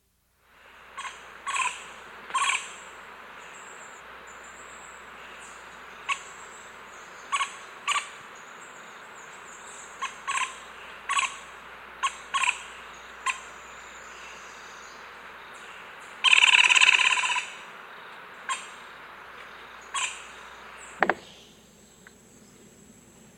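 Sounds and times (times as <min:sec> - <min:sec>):
Pale-billed Woodpecker in South America: 0:00.9 - 0:02.9, 0:05.4 - 0:08.2, 0:09.3 - 0:17.7, 0:18.4 - 0:22.2.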